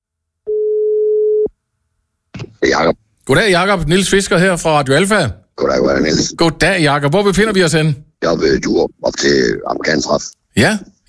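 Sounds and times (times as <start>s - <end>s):
telephone line tone during an outgoing call: 0.5s - 1.5s
speech: 2.8s - 11.0s.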